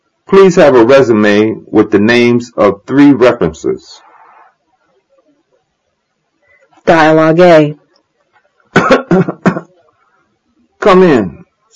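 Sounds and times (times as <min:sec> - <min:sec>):
speech: 0:00.3 - 0:04.0, 0:06.9 - 0:07.8, 0:10.8 - 0:11.4
harsh hacking coughs from a heavy smoker: 0:08.7 - 0:09.8.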